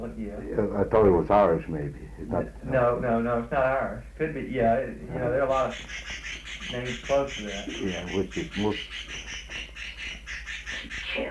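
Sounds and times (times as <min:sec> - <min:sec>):
speech: 0:00.0 - 0:09.6
bird calling in high chirping notes: 0:00.0 - 0:11.2
low steady hum: 0:00.0 - 0:11.2.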